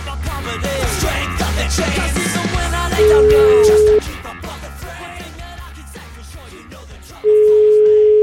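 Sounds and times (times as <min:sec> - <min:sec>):
continuous music: 0:00.0 - 0:08.2
long steady telephone line tone beeps as a call is placed: 0:03.0 - 0:04.0, 0:07.3 - 0:08.2.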